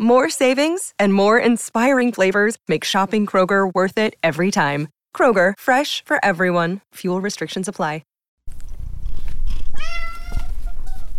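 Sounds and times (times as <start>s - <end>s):
speech: 0.0s - 8.1s
male pet cat meowing: 9.7s - 11.0s.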